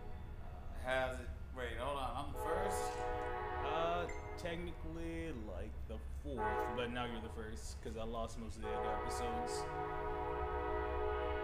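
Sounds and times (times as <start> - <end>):
train rumbling past: 0.0 - 11.4
speech: 0.8 - 10.3
droning horn-like tones: 2.2 - 5.4, 6.3 - 7.8, 8.5 - 11.4.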